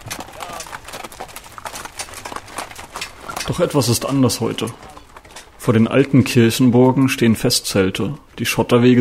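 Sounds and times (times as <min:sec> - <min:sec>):
busy outdoor noise: 0:00.0 - 0:08.9
hay-laden horse-drawn carriage clip-clopping past in Transylvania: 0:00.0 - 0:08.9
speech: 0:03.5 - 0:05.0, 0:05.6 - 0:08.9.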